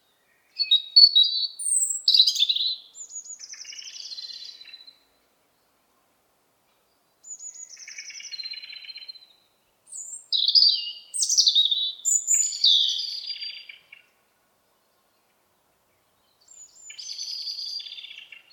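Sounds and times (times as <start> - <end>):
European robin Erithacus rubecula singing: 0.0 - 5.8, 6.8 - 18.5.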